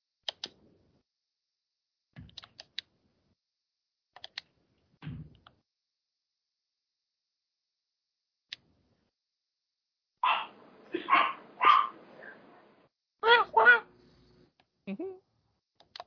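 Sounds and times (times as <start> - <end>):
little dog in a window barking: 10.2 - 12.4.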